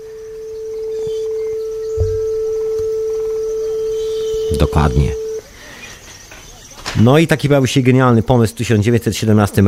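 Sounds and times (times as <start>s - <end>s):
440 Hz sine test tone: 0.0s - 5.4s
faint noise: 0.0s - 9.6s
soft thump: 2.0s - 2.2s
speech: 4.6s - 5.2s, 7.0s - 9.6s.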